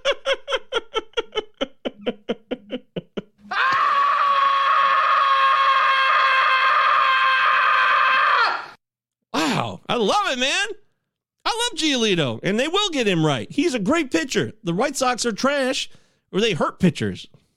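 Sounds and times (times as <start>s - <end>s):
choppy laugh-like vocal bursts: 0.0s - 3.5s
high-pitched scream sound effect imitating a comedian: 3.4s - 8.8s
speech: 10.0s - 10.8s, 11.5s - 17.4s.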